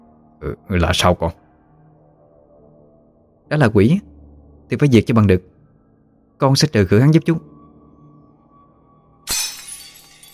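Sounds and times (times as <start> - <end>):
speech: 0.4 - 1.4, 3.5 - 4.1, 4.7 - 5.5, 6.4 - 7.5
scattered fragments tinkling: 9.3 - 10.3
something falling and shattering at a front door: 9.3 - 10.3.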